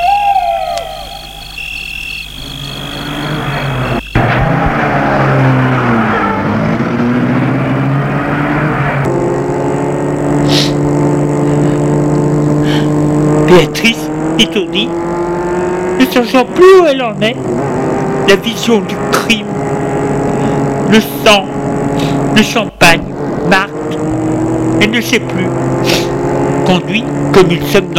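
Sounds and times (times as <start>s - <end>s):
night creatures calling: 0.0s - 4.2s
car engine starting, revving and pulling away: 2.3s - 27.9s
speech: 14.4s - 15.2s, 16.0s - 17.6s, 18.3s - 19.6s, 20.9s - 21.6s, 22.4s - 24.1s, 24.8s - 26.0s, 26.7s - 27.9s.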